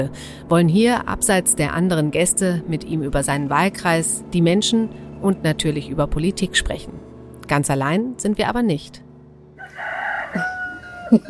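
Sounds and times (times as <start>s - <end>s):
speech: 0.0s - 9.1s, 11.1s - 11.2s
rooster crowing behind a hut: 9.6s - 11.2s.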